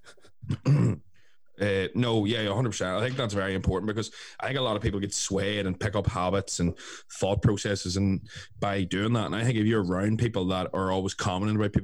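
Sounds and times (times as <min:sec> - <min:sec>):
person coughing harshly: 0:00.2 - 0:01.1
speech: 0:01.6 - 0:11.8.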